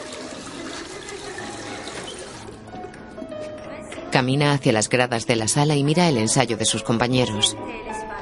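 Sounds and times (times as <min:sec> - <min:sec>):
water gushing from a drinking fountain into a thermos: 0:00.0 - 0:03.3
speech: 0:04.2 - 0:08.1.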